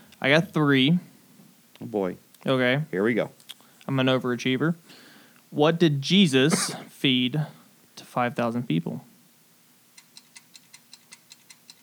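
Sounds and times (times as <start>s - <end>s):
low hum: 0.0s - 11.8s
speech: 0.2s - 1.1s, 1.8s - 7.6s, 8.2s - 9.1s
clock ticking as a timer: 10.0s - 11.8s.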